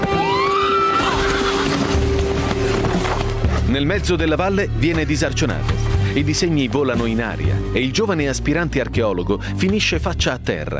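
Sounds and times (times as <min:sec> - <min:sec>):
horse whinnying as its rider sets off: 0:00.0 - 0:03.6
speech: 0:03.8 - 0:10.7.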